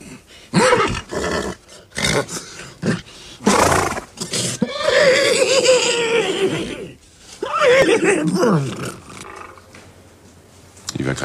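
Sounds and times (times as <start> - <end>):
person imitating horse whinnies and snorts: 0.5 - 2.4, 3.4 - 9.6
speech: 2.2 - 2.4.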